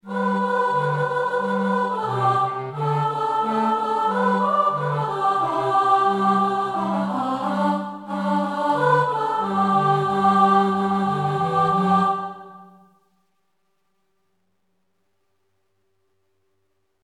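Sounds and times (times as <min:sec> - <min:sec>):
choir soprano section singing: 0:00.0 - 0:12.9.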